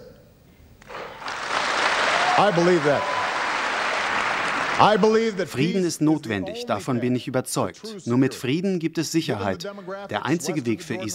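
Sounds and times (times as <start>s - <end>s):
standing applause from large hall audience: 0.9s - 5.6s
person cheering: 2.0s - 3.6s
speech: 2.4s - 3.1s, 4.8s - 11.1s.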